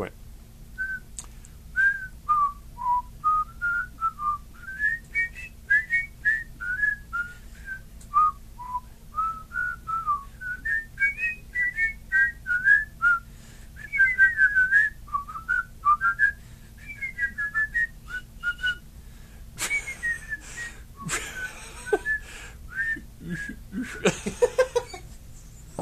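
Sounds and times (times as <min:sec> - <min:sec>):
person whistling a birthday tribute melody: 0:00.8 - 0:01.0, 0:01.8 - 0:18.8, 0:19.6 - 0:23.6
laughter: 0:21.0 - 0:22.1, 0:23.2 - 0:25.1.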